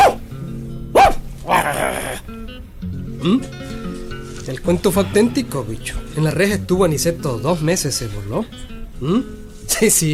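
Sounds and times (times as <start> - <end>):
dog barking: 0.0 - 0.2, 0.9 - 1.3
speech: 2.3 - 3.7, 4.5 - 10.1.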